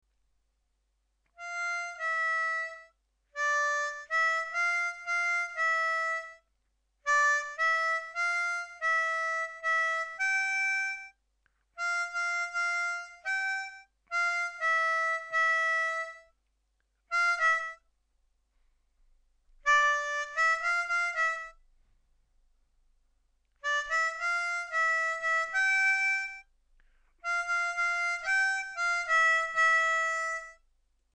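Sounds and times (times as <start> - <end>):
chorus harmony harmonica playing: 1.4 - 6.5, 7.1 - 11.2, 11.8 - 16.3, 17.1 - 17.8, 19.6 - 21.6, 23.6 - 26.5, 27.2 - 30.6.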